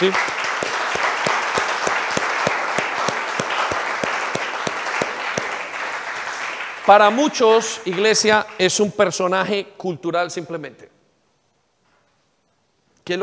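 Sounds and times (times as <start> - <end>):
speech: 0.0 - 0.3, 6.9 - 11.0, 13.1 - 13.2
large church audience applauding: 0.0 - 8.8.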